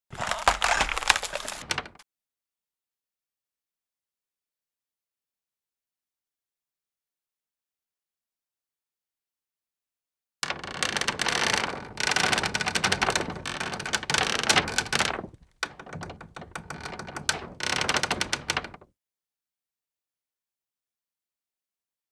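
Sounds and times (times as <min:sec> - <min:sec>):
tree creaking: 0:00.1 - 0:02.0, 0:10.4 - 0:18.9.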